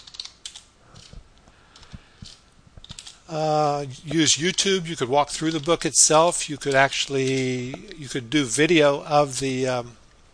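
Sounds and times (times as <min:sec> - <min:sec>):
typing on a computer keyboard: 0:00.0 - 0:03.2
speech: 0:03.3 - 0:10.0.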